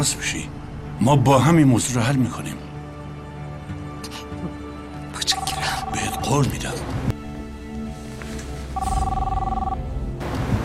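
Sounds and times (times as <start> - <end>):
speech: 0.0 - 2.7, 6.3 - 6.9
telephone ringing with steady electronic tone: 5.3 - 6.5, 8.8 - 9.8.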